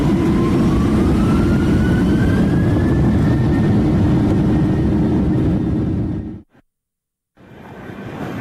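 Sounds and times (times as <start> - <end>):
jet airliner engine roar in a plane cabin during takeoff: 0.0 - 6.5, 7.4 - 8.3
thin whine rising in pitch: 0.0 - 6.5.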